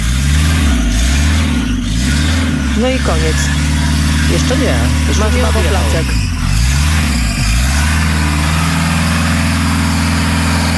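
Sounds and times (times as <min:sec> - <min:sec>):
whistling chirp in car engine: 0:00.0 - 0:02.8, 0:06.0 - 0:10.7
car engine revving at high RPM: 0:00.0 - 0:10.7
speech: 0:02.8 - 0:03.6, 0:04.3 - 0:06.3.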